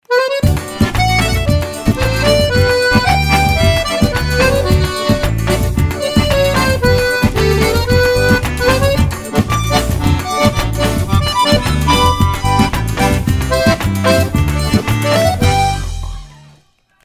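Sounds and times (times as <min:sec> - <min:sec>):
forro music: 0:00.0 - 0:16.8.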